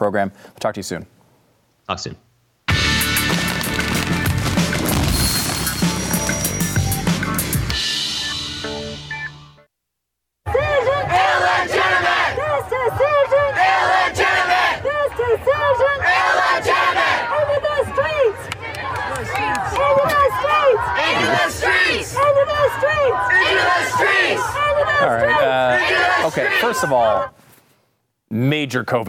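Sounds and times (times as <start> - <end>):
speech: 0.0 - 1.2, 1.9 - 2.3, 24.4 - 27.4, 28.3 - 29.0
music: 2.7 - 9.7
loud crowd roaring: 10.5 - 27.3.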